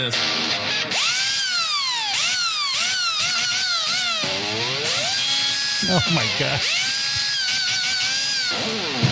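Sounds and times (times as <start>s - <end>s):
speech: 0.0s - 1.1s, 5.8s - 6.8s
Makita cordless power drill whirring: 1.0s - 5.8s, 6.6s - 9.0s
laughter: 5.8s - 7.2s.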